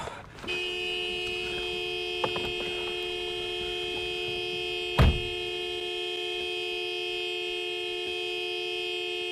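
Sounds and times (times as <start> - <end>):
car horn blaring in one long steady tone: 0.3 - 9.3
brief dull thump: 4.9 - 5.4.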